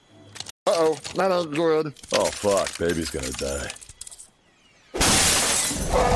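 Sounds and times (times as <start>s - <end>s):
speech: 0.8s - 3.8s
glass shattering with tinkling shards: 5.0s - 6.0s.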